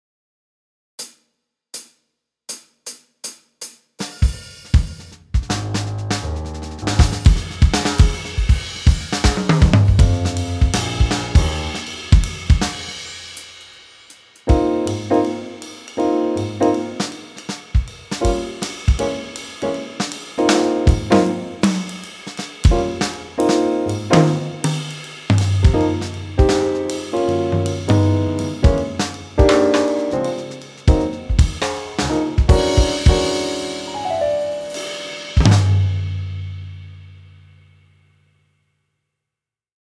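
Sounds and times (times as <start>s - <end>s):
bright swing bass backing track: 4.3s - 13.0s, 14.5s - 37.2s.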